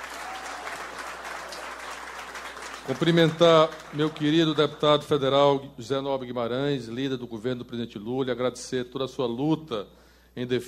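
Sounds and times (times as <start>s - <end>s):
audience at a political gathering applauding: 0.0s - 5.2s
speech: 2.9s - 10.6s.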